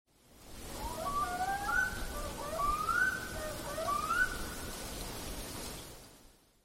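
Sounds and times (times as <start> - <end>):
black-throated loon courtship call: 0.8 - 4.4.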